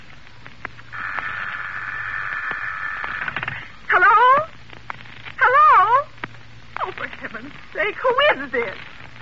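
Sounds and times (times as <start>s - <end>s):
steady buzzing tone on a malfunctioning telephone line: 0.8s - 4.4s
speech: 7.9s - 8.9s.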